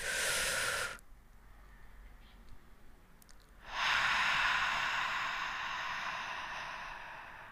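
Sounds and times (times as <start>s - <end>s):
big deep breath: 0.0s - 1.0s, 3.6s - 7.4s.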